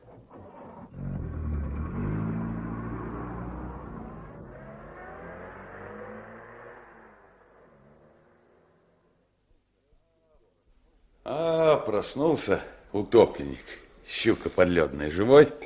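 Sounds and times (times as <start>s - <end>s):
car engine revving and driving off: 0.7s - 9.2s
speech: 11.3s - 15.6s.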